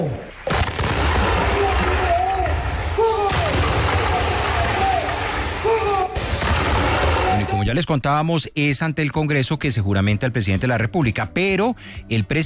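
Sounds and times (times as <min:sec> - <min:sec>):
artillery battery firing a ceremonial salute at a presidential inauguration: 0:00.4 - 0:07.6
speech: 0:07.7 - 0:12.4.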